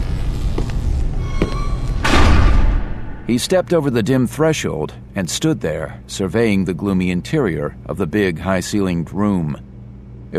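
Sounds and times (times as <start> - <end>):
heavy door scraping as it swings open: 0.2 - 3.3
tall heavy door thudding as shoved with shoulder: 1.3 - 3.4
speech: 3.3 - 9.7.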